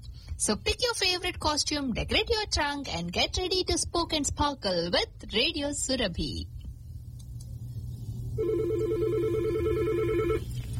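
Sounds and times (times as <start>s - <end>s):
speech: 0.4s - 6.6s
steady low hum: 6.4s - 10.7s
telephone ringing in a radio studio: 8.4s - 10.5s.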